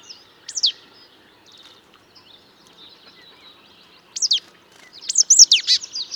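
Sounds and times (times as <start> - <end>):
marsh tit Poecile palustris calling: 1.4 - 6.1.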